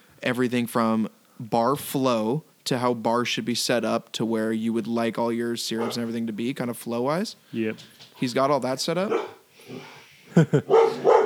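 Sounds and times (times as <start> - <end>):
speech: 0.2 - 11.2
dog barking and yelping: 5.8 - 6.2, 9.0 - 10.0, 10.7 - 11.2.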